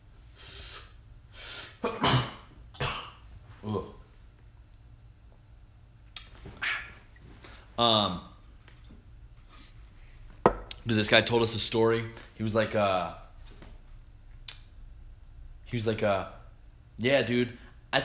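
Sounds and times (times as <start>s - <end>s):
sneeze: 1.5s - 3.2s
speech: 7.8s - 8.3s, 10.9s - 13.2s, 15.7s - 16.4s, 17.0s - 18.0s.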